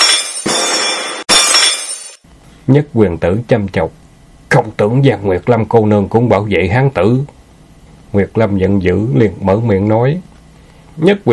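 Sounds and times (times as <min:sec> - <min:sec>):
ceramic teacups falling and shattering: 0:00.0 - 0:02.2
speech: 0:02.7 - 0:07.4, 0:08.1 - 0:10.3, 0:11.0 - 0:11.3.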